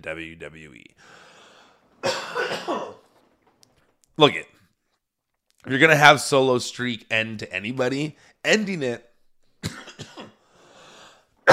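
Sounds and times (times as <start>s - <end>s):
speech: 0.0s - 1.2s, 2.3s - 3.0s, 4.2s - 4.5s, 5.6s - 9.8s
harsh coughs: 2.0s - 3.1s, 9.6s - 10.4s.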